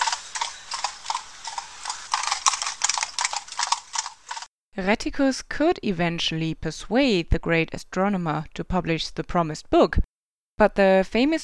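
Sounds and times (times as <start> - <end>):
saddled ridden horse hooves clip-clopping at a trot: 0.0 - 4.5
speech: 4.8 - 11.4.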